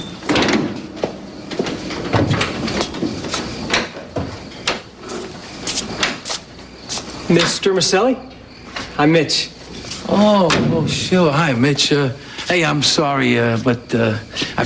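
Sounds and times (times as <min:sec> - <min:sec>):
van sliding door rolled open and slammed shut with rattles and clunks: 0:00.1 - 0:05.0
speech: 0:07.3 - 0:08.3, 0:09.0 - 0:09.5, 0:10.1 - 0:14.6.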